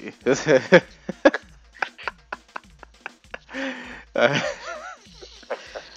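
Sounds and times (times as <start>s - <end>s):
laughter: 0.3s - 5.9s
fatigued man panting heavily: 3.3s - 4.8s, 5.4s - 5.9s.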